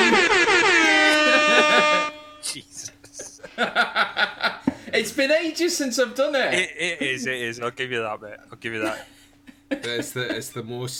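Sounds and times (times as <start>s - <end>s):
loud blaring air horn blast: 0.0s - 2.6s
laughter: 0.0s - 4.9s
speech: 5.0s - 10.9s.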